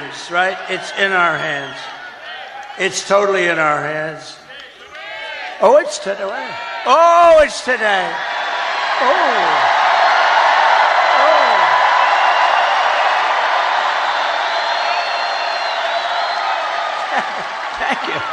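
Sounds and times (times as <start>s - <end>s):
large live audience crowd cheering: 0.0s - 18.3s
speech: 0.2s - 2.0s, 2.8s - 4.4s, 5.6s - 8.4s, 9.0s - 9.8s
laughter: 16.9s - 18.3s.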